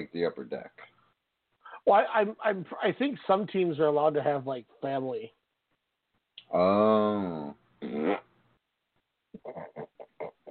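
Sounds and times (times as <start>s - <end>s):
speech: 0.0s - 1.0s, 1.8s - 5.4s, 6.5s - 8.2s
short loud buzzy fart: 6.5s - 8.3s.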